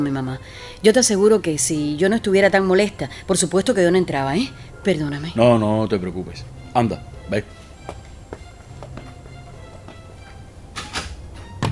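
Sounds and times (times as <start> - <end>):
speech: 0.0 - 7.6
door swinging shut with latch clicks and a thud: 10.7 - 11.7.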